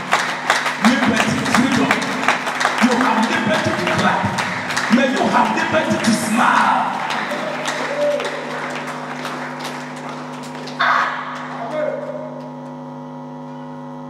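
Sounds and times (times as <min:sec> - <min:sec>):
audience clapping hands: 0:00.0 - 0:12.5
speech: 0:05.4 - 0:06.8.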